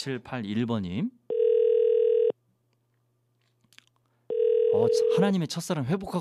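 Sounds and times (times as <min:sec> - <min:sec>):
speech: 0:00.0 - 0:01.2, 0:04.7 - 0:06.1
electronic telephone ringback tone: 0:01.3 - 0:02.3, 0:04.3 - 0:05.2.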